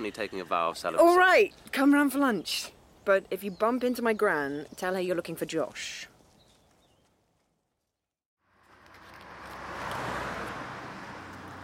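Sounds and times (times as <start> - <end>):
speech: 0.0 - 6.1
bird chirping outdoors: 0.0 - 7.2
car passing with engine and tyre noise: 8.4 - 11.6.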